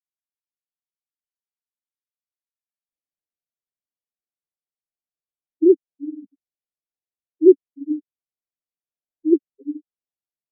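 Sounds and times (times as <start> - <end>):
band-tailed pigeon hooting: 5.6 - 6.3, 9.3 - 9.8.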